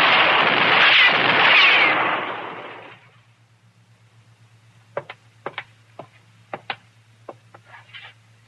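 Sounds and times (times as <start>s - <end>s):
gunshot fired at someone up high: 0.0s - 3.1s.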